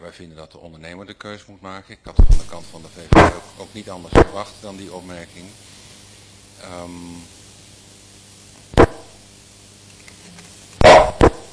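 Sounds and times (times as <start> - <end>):
speech: 0.0 - 5.8, 6.6 - 7.4
dog barking in the room: 10.8 - 11.4.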